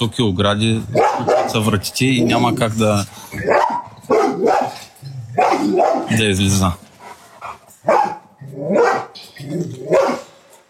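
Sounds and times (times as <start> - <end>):
speech: 0.0 - 3.6, 5.7 - 6.8
dog yelping softly: 0.9 - 1.6, 3.3 - 6.1, 7.8 - 10.3
dog barking in a yard: 0.9 - 1.7, 3.4 - 6.2, 7.8 - 9.2, 9.8 - 10.4.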